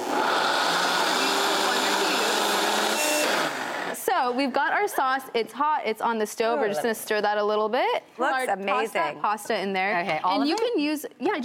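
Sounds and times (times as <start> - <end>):
blender puréeing cooled onions into a sauce: 0.0 - 4.0
speech: 4.3 - 11.4.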